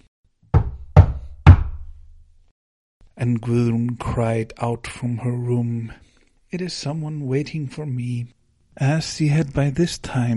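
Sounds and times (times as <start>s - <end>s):
firm knocks on a wooden door: 0.5s - 2.0s
speech: 3.2s - 10.3s.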